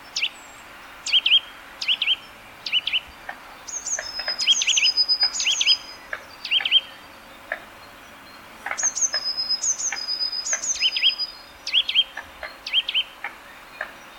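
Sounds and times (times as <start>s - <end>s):
steady background hiss: 0.0s - 14.1s
Eurasian nuthatch caesia curving whistled notes, high thin calls and sharp clicks: 0.1s - 3.1s, 3.7s - 7.0s, 8.7s - 13.2s.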